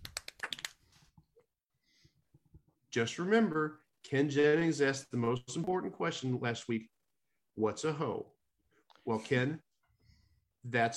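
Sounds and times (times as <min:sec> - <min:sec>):
soft golf clap: 0:00.0 - 0:00.8
speech: 0:02.9 - 0:06.9, 0:07.6 - 0:08.4, 0:09.0 - 0:09.7, 0:10.6 - 0:10.9.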